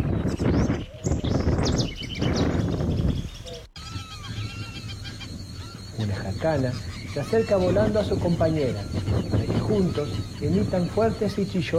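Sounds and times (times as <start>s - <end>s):
house wren singing loudly: 0.1s - 11.7s
speech: 6.4s - 9.1s, 9.7s - 11.7s.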